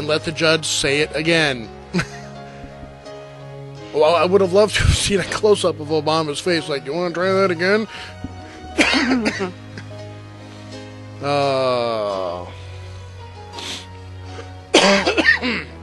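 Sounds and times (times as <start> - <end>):
speech: 0.0 - 2.2, 3.9 - 8.3, 9.0 - 9.6, 11.2 - 12.5
phlegmy throat clearing and coughing: 8.8 - 9.9, 14.3 - 15.8.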